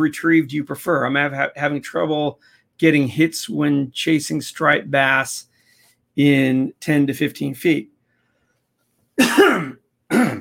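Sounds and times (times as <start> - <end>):
speech: 0.0 - 5.5, 6.2 - 7.9
loud cough rolling into raspy throat clearing: 9.2 - 10.3.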